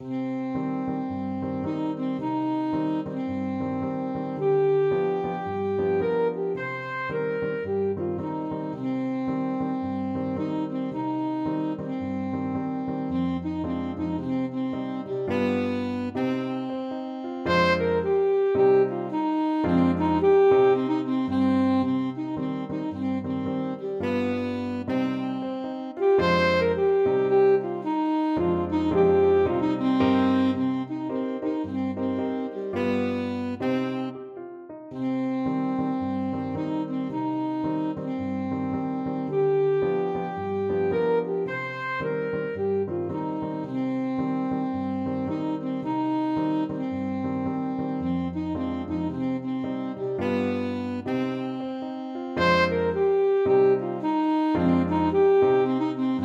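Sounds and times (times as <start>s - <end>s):
saxophone melody: 0.0s - 56.2s.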